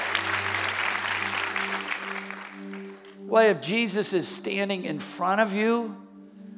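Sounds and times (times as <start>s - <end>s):
church audience clapping: 0.0s - 3.3s
speech: 3.3s - 6.0s.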